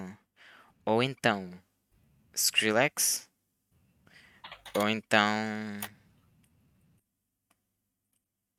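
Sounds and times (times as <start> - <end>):
speech: 0.8 - 1.7, 2.4 - 3.3, 4.7 - 6.0
computer mouse clicks: 4.4 - 4.9
computer keyboard clicks: 4.4 - 5.0.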